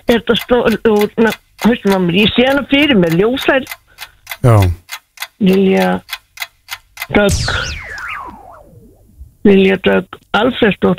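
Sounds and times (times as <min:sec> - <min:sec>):
quiz game clock ticking: 0:00.0 - 0:07.3
speech: 0:00.1 - 0:03.8, 0:04.4 - 0:04.8, 0:05.4 - 0:06.1, 0:07.1 - 0:08.0, 0:09.4 - 0:10.9
descending warbling whistling sweep: 0:07.3 - 0:09.3.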